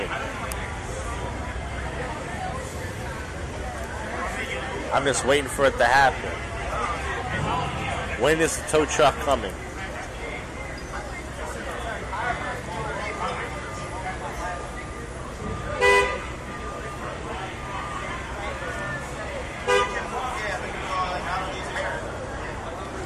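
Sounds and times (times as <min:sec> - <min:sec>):
street traffic road noise: 0:00.0 - 0:23.0
speech: 0:04.9 - 0:06.5, 0:08.2 - 0:09.7
car horns beeping at a car stopped in the street: 0:15.7 - 0:16.3, 0:19.6 - 0:20.0.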